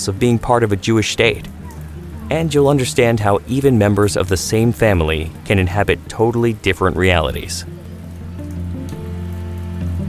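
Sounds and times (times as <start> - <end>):
speech: 0.0 - 1.6, 2.3 - 7.9
low humming engine-like drone: 0.0 - 10.0
steady rain hissing and pattering: 0.0 - 10.0.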